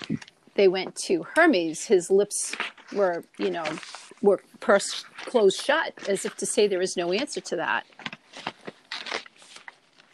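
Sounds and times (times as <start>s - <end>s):
speech: 0.1s - 8.5s
book pages being turned: 2.4s - 10.1s.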